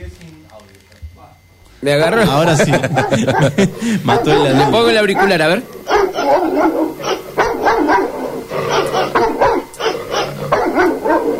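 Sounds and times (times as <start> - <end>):
speech: 1.8 - 7.2
laughter: 1.9 - 5.7
dog barking: 2.7 - 11.3.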